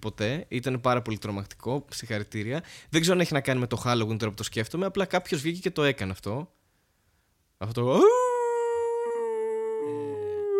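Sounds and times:
speech: 0.0 - 6.6, 7.6 - 8.3
person imitating a wolf howling: 7.9 - 10.5.

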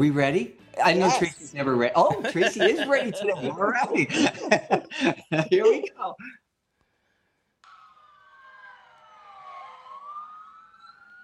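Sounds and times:
speech: 0.0 - 6.4
laughter: 2.0 - 6.3
emergency vehicle siren wailing: 7.7 - 11.2.

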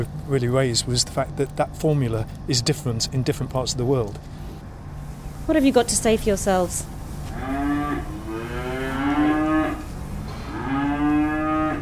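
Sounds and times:
speech: 0.0 - 4.4, 5.5 - 7.6
steady low hum of farm noise: 0.0 - 11.8
several cows mooing on a farm: 7.3 - 11.8.

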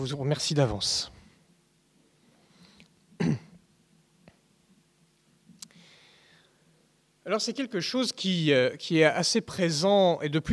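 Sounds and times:
speech: 0.0 - 1.2, 3.2 - 3.4, 7.2 - 10.5
loud throat clearing: 3.2 - 3.6.

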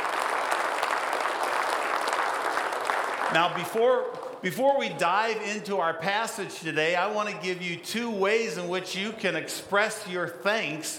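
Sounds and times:
large crowd applauding: 0.0 - 4.4
speech: 3.3 - 10.9.

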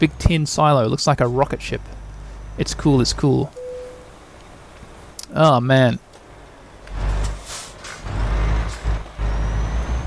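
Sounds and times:
speech: 0.0 - 2.0, 2.6 - 3.6, 5.3 - 6.0
large truck idling and maneuvering at a factory unloading area: 0.0 - 10.0
truck air brakes hissing: 7.2 - 9.0.

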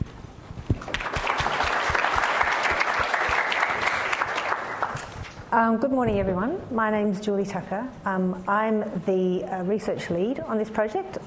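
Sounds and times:
audience applause welcoming speakers: 0.8 - 5.2
speech: 5.5 - 11.2.

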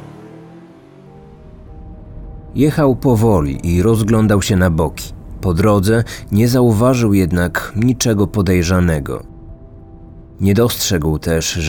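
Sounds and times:
car engine humming as a man drives off: 0.0 - 11.6
speech: 2.5 - 9.3, 10.4 - 11.6.

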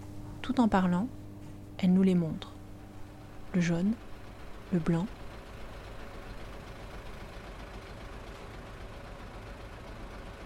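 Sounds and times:
speech: 0.5 - 1.2, 1.8 - 2.5, 3.5 - 4.1, 4.7 - 5.2
city buses idling and driving along a street: 3.0 - 10.4.

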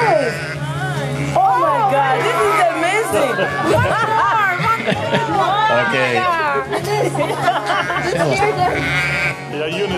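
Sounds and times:
flock of sheep bleating: 0.0 - 5.1, 7.6 - 9.6
laughter: 1.4 - 9.1
speech: 5.8 - 9.9.

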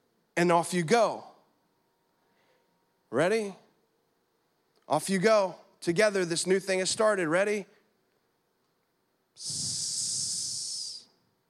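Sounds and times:
speech: 0.4 - 1.3, 3.1 - 3.6, 4.9 - 7.8, 9.4 - 9.8
voice imitating a snake hiss: 9.4 - 11.1.

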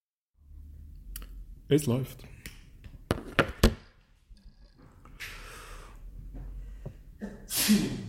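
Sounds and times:
speech: 1.7 - 2.4, 7.7 - 8.0
person sneezing: 7.2 - 8.0.

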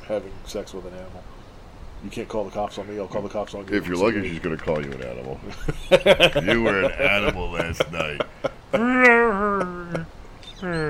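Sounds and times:
speech: 0.1 - 1.4, 2.0 - 10.8
laughter: 5.3 - 10.1
voice imitating a sad wolf purr: 8.8 - 10.8.

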